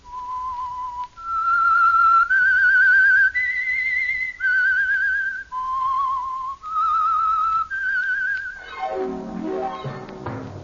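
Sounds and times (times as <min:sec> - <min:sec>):
lone whistled signature tune: 0:00.1 - 0:10.2
descending swooping tone: 0:08.6 - 0:10.4.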